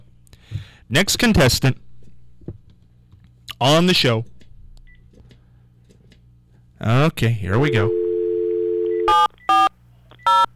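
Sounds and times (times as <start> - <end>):
speech: 0.9 - 1.8, 3.6 - 4.3, 6.8 - 8.0
steady telephone dial tone: 7.9 - 9.3.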